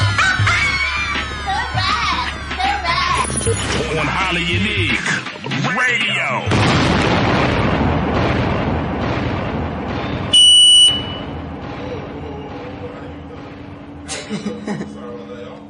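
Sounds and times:
laughter: 0.0s - 5.6s, 11.9s - 15.6s
speech: 4.0s - 7.2s
bomb explosion sound effect from a radio DJ: 6.5s - 14.1s
high beeping tone: 10.4s - 11.3s.

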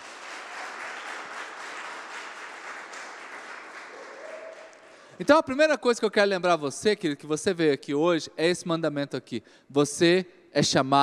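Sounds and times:
audience applauding loudly: 0.0s - 5.1s
speech: 5.2s - 11.0s.

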